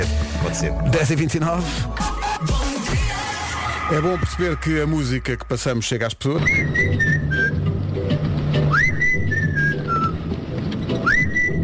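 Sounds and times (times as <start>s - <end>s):
steady rumbling background: 0.0s - 11.6s
speech: 0.6s - 2.6s, 3.9s - 7.1s
tuneful human whistling: 6.4s - 7.7s, 8.7s - 10.2s, 11.0s - 11.6s.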